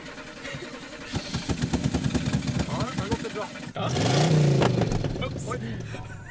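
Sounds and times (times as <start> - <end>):
V8 car engine starting and revving: 0.0 - 6.2
laughter: 0.1 - 1.4, 5.1 - 6.2.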